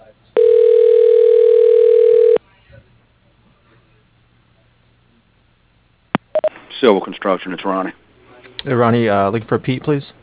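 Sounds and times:
telephone line ringing during a call transfer: 0.4 - 2.4
speech: 6.9 - 8.0, 8.6 - 10.2.

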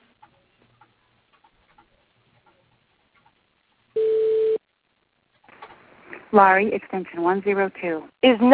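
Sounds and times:
steady electronic telephone tone as a call transfers to voicemail: 4.0 - 4.6
speech: 6.3 - 8.5.

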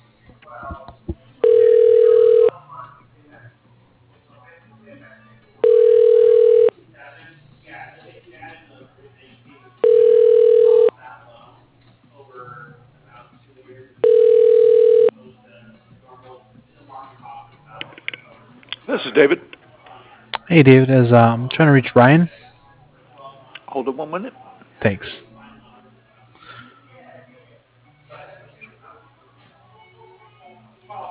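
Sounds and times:
telephone ringback tone while a call is transferred: 1.4 - 2.5, 5.6 - 6.7, 9.8 - 10.9, 14.0 - 15.1
speech: 19.2 - 19.4, 20.5 - 22.4, 24.0 - 25.2.

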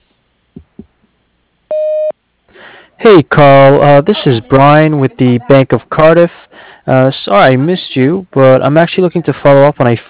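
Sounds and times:
soft thumps: 0.5 - 1.0
voicemail answering machine beep: 1.7 - 2.1
speech: 3.0 - 10.0.

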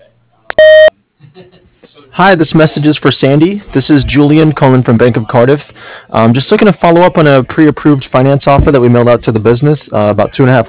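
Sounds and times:
voicemail electronic beep tone: 0.5 - 0.9
speech: 2.2 - 10.6.

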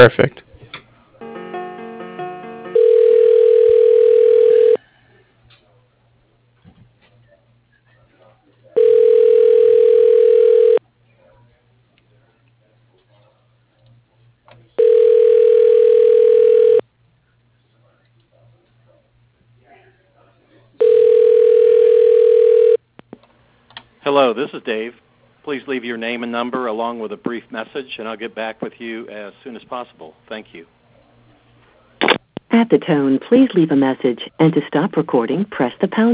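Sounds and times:
speech: 0.0 - 0.5, 24.6 - 30.8, 32.6 - 36.1
ringback tone on a phone line during transfer to voicemail: 1.2 - 4.8, 8.8 - 10.8, 14.8 - 16.8, 20.8 - 22.8.

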